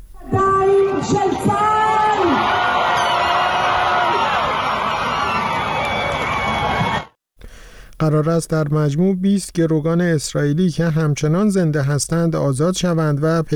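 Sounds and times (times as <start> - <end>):
large crowd of families shouting and cheering joyfully in a square: 0.3 - 7.2
speech: 8.0 - 13.5.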